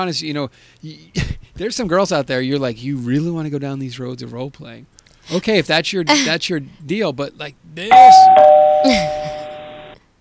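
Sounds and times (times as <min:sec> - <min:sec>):
speech: 0:00.0 - 0:09.0
electronic doorbell chime: 0:07.9 - 0:10.0.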